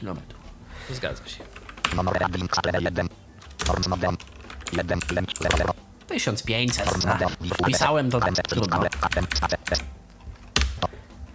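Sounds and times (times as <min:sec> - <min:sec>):
speech: 0:00.0 - 0:03.1, 0:03.7 - 0:10.0
computer keyboard keys being pressed: 0:01.6 - 0:05.8, 0:06.7 - 0:09.9.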